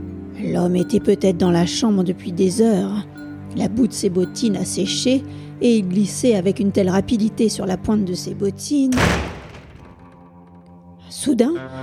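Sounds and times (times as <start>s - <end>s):
speech: 0.4s - 9.3s, 11.2s - 11.8s
thud of a door being shut downstairs: 8.9s - 10.7s.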